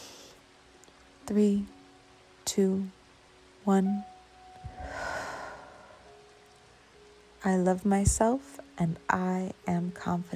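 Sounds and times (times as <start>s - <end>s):
speech: 1.3s - 1.8s, 2.5s - 3.0s, 3.6s - 4.1s, 7.4s - 10.3s
deep breath in during a guided confidence meditation: 4.7s - 6.1s.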